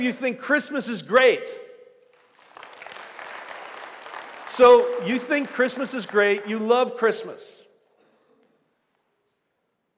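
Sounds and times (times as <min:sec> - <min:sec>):
speech: 0:00.0 - 0:01.7, 0:04.6 - 0:07.6
audience applause at a Christmas-themed talk: 0:02.1 - 0:07.3.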